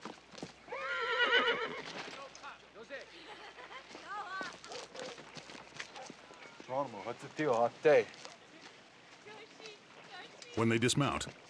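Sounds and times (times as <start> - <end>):
horse hooves clip-clopping: 0.0 - 0.9, 1.7 - 11.4
horse whinnying: 0.7 - 1.9
speech: 6.8 - 8.2, 10.6 - 11.4.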